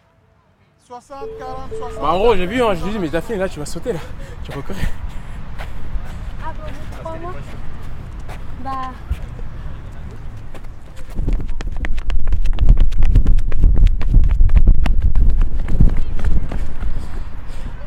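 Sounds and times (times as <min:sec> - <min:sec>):
speech: 0:00.9 - 0:05.1, 0:07.1 - 0:07.7, 0:08.6 - 0:09.2
brief tonal calls: 0:01.2 - 0:03.9
wind rushing past microphone during a sprint: 0:04.1 - 0:17.8.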